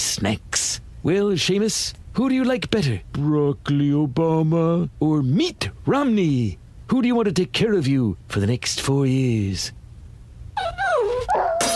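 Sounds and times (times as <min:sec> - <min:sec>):
speech: 0:00.2 - 0:09.8
dog whining and yelping: 0:10.6 - 0:11.7.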